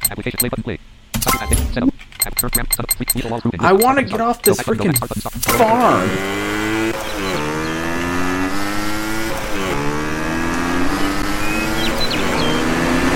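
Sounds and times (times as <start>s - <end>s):
speech: 0.1s - 6.6s
loud motor engine revving: 6.0s - 13.1s.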